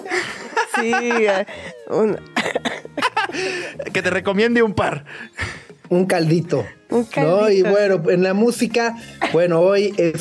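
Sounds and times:
laughter: 0.0 - 4.2
speech: 0.8 - 10.2
raspy coughs in quick bursts: 2.4 - 3.9, 9.1 - 9.5.

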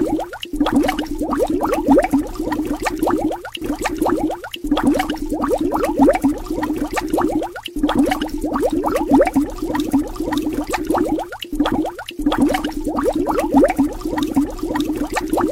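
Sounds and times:
bubbles rising and popping in water: 0.0 - 15.5.

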